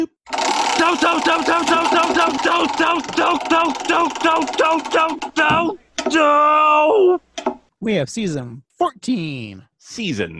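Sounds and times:
speech: 0.0s - 7.2s, 7.8s - 10.3s
wheel of random spins clicking: 0.3s - 6.1s.

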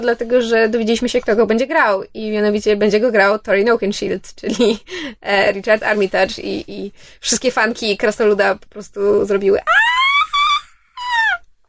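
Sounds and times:
speech: 0.0s - 10.0s
very high-pitched excited squeal: 9.6s - 11.4s.

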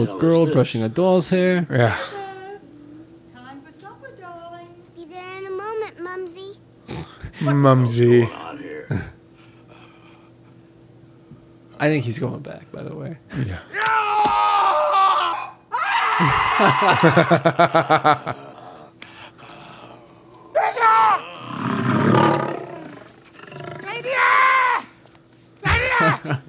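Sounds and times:
speech: 0.0s - 2.2s, 7.4s - 9.1s, 11.8s - 14.0s, 16.2s - 18.5s
laughter: 1.8s - 2.9s, 16.2s - 18.6s, 25.6s - 26.4s
tribesmen screaming and shouting while running from a lion: 13.6s - 23.0s, 23.8s - 25.0s, 25.6s - 26.4s
lion roaring: 17.9s - 24.2s.

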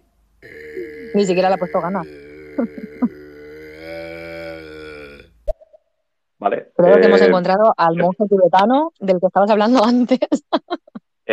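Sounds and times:
long low droning throat grunt: 0.4s - 5.4s
speech: 1.1s - 3.2s, 6.4s - 11.3s
laughter: 6.9s - 7.6s.

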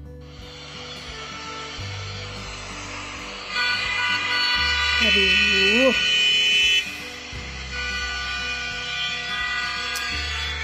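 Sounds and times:
steady low rumble of idling car engines in a traffic jam: 0.2s - 10.6s
car horns blaring in a traffic jam in Jakarta: 3.5s - 10.6s
speech: 5.0s - 6.1s.

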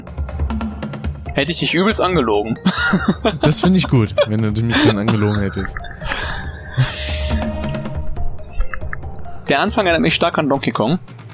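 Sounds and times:
video game boss music with heavy bass, synth tones and percussive hits: 0.1s - 11.3s
speech: 1.4s - 7.1s, 9.5s - 11.2s
laughter: 2.6s - 7.2s.

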